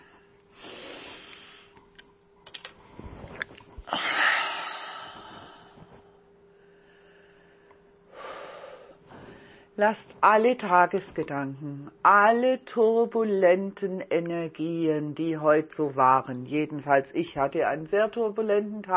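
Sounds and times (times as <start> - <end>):
person breathing in and out: 0.0 - 1.8, 2.8 - 9.8
faint steady hum: 0.0 - 18.9
speech: 9.8 - 18.9.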